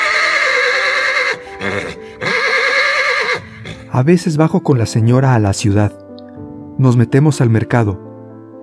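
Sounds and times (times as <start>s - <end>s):
horse neighing: 0.0s - 3.9s
speech: 4.0s - 6.0s, 6.8s - 8.1s.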